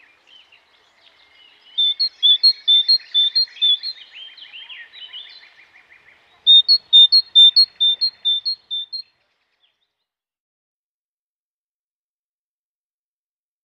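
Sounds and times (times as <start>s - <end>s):
Great tit twittering: 1.6s - 5.5s, 6.5s - 9.1s.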